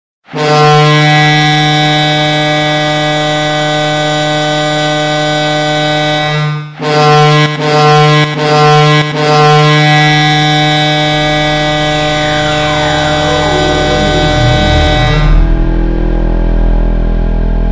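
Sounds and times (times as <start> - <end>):
siren: 0.3 - 17.6
melody: 11.4 - 16.3.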